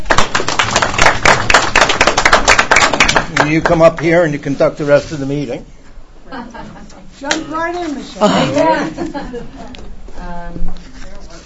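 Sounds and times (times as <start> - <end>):
group of people at a meeting clapping for an election winner: 0.0 - 4.3
speech: 3.4 - 10.8
laughter: 6.3 - 7.0, 8.2 - 9.8.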